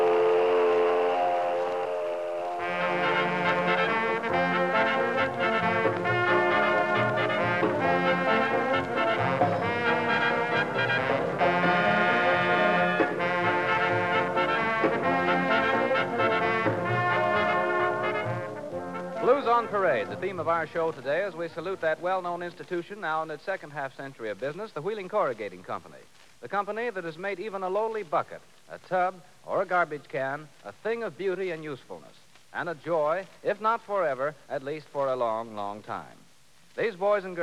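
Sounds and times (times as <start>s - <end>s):
loud steel mill whistle blowing: 0.0s - 20.2s
speech: 20.2s - 36.2s, 36.8s - 37.4s.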